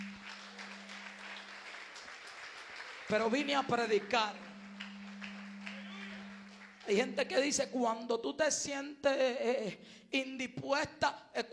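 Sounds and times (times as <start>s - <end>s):
audience applause during a church service: 0.0s - 7.1s
low constant hum: 0.0s - 8.8s
speech: 3.1s - 4.5s, 6.9s - 11.5s.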